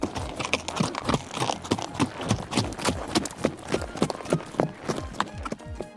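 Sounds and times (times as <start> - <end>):
horse hooves clip-clopping on hard ground at a walking pace: 0.0 - 5.9.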